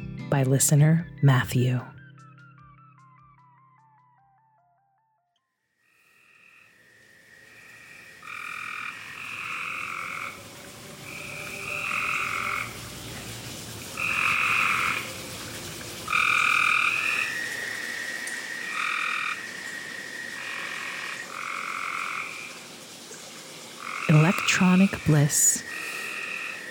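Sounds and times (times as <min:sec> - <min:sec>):
speech: 0:00.3 - 0:02.0, 0:25.0 - 0:25.7
chorus of frogs croaking in Fayetteville North Carolina: 0:05.8 - 0:26.6
steady night-time din: 0:24.1 - 0:25.7.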